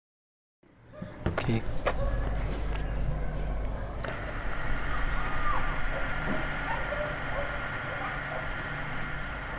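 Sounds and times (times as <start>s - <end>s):
faint outdoor ambience at a soccer field in Tijuana: 0.6s - 9.5s
speech: 1.5s - 1.8s
motor of an old 16mm analog film camera whirring: 4.0s - 9.5s.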